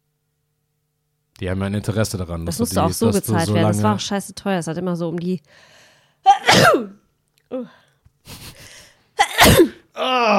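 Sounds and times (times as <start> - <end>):
speech: 1.4 - 8.5
loud sneezes into the microphone: 6.4 - 6.9, 9.2 - 9.8
sniffs and breaths: 8.2 - 9.0.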